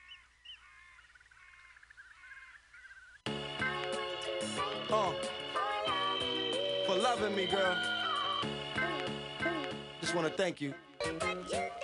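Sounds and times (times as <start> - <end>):
birds calling in short chirping trills: 0.0 - 10.4
loud music: 3.3 - 11.8
speech: 7.1 - 8.5, 10.1 - 11.6.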